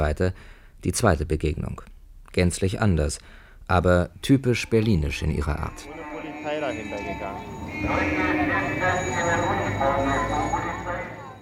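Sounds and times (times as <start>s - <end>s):
speech: 0.0s - 10.4s
car horns blaring in a honking protest at a loudspeaker van: 5.7s - 11.4s.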